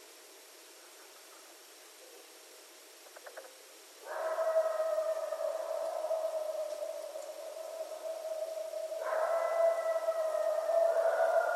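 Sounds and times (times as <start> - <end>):
coyote howling and yipping: 4.0 - 11.5.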